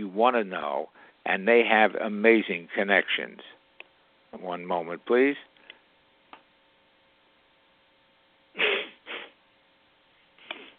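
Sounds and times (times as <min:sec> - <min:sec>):
speech: 0:00.0 - 0:03.6, 0:04.3 - 0:05.5
faint steady hum: 0:00.0 - 0:10.7
loud sneeze: 0:08.6 - 0:09.4
soft sniff: 0:08.6 - 0:09.4.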